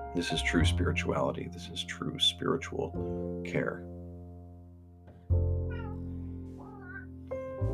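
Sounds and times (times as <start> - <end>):
speech: 0.1 - 4.0
domestic cat meowing: 5.6 - 7.6.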